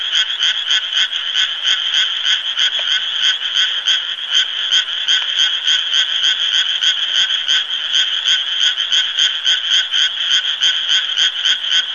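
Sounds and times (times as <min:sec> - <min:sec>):
frog giving rapid pulsed croaks: 0:00.0 - 0:11.9.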